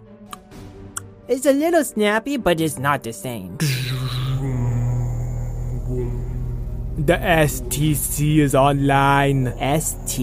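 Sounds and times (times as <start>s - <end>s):
sharp tongue snapping clicks: 0.3s - 1.1s
speech: 1.3s - 4.2s, 7.0s - 10.2s
quiet low hum: 3.9s - 10.2s.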